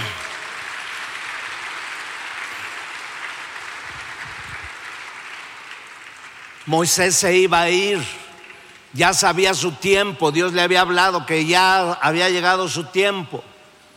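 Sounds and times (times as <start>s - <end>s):
church audience applauding: 0.0s - 7.2s
speech: 6.6s - 8.2s, 8.9s - 13.5s.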